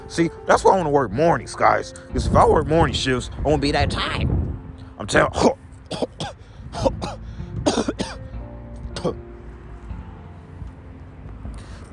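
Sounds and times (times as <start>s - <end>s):
speech: 0.1s - 4.4s, 5.0s - 6.1s
person coughing: 5.4s - 8.2s.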